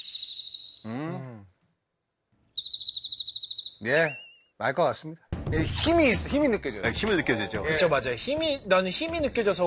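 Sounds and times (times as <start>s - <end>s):
cricket chirping in a rapid pulsing trill: 0.0s - 0.9s, 2.6s - 3.8s
speech: 3.8s - 9.6s.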